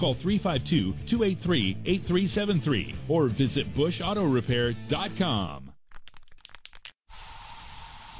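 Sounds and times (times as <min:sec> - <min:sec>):
speech: 0:00.0 - 0:05.7
aerosol bug spray hissing inside a home: 0:07.1 - 0:08.1.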